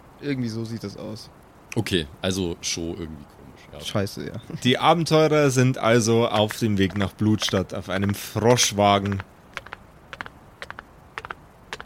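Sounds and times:
speech: 0:00.2 - 0:09.3
heavy galloping hoofbeats on dirt and stones: 0:06.3 - 0:11.8.

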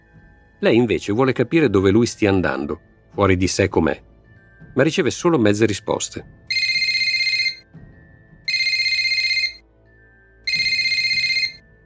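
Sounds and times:
speech: 0:00.6 - 0:04.1, 0:04.8 - 0:06.4
telephone ringing with warbling bursts: 0:06.5 - 0:07.6, 0:08.5 - 0:09.6, 0:10.5 - 0:11.6.

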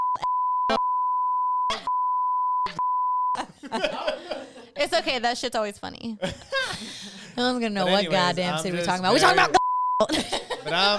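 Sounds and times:
censor bleep tone: 0:00.0 - 0:03.4, 0:09.6 - 0:10.1
laughter: 0:03.4 - 0:04.8, 0:08.6 - 0:10.9
speech: 0:03.6 - 0:10.9.

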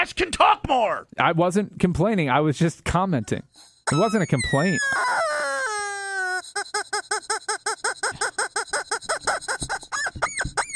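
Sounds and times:
speech: 0:00.0 - 0:05.2
rubber chicken dog toy squeaking: 0:03.9 - 0:10.7.

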